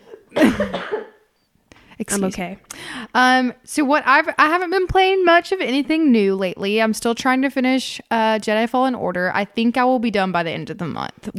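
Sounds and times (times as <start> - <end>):
single forceful cough with rough follow-through: 0.0 - 1.3
speech: 0.6 - 0.9, 2.1 - 11.3.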